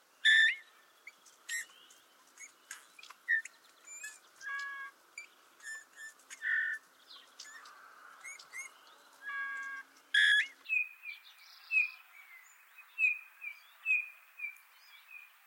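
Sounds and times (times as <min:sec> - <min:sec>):
bullfinch song call: 0:00.3 - 0:00.7, 0:02.4 - 0:10.9.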